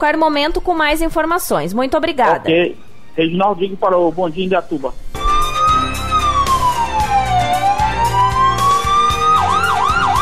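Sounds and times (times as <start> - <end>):
speech: 0.0 - 5.1
emergency siren wailing: 5.2 - 10.2.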